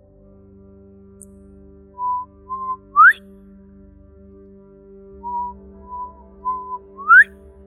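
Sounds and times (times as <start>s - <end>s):
person whistling a bird-like call: 2.0s - 3.2s, 5.3s - 7.3s.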